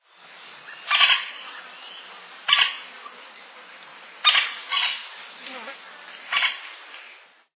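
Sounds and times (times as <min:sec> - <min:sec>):
pica-pau-de-topete-vermelho woodpecker: 0:00.8 - 0:01.4, 0:02.5 - 0:02.8, 0:04.2 - 0:05.1, 0:06.3 - 0:06.8.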